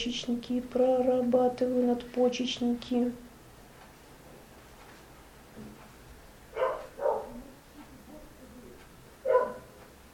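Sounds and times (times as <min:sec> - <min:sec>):
speech: 0:00.0 - 0:03.3
laika dog barking sharply: 0:06.5 - 0:07.4, 0:09.2 - 0:09.8
murmur: 0:06.6 - 0:09.7.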